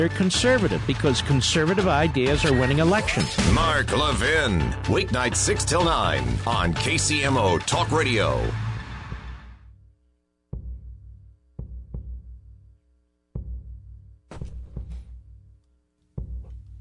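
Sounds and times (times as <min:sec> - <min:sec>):
speech: 0:00.0 - 0:08.6
deep booming heartbeat sound effect: 0:10.6 - 0:12.6, 0:13.4 - 0:15.5, 0:16.2 - 0:16.7.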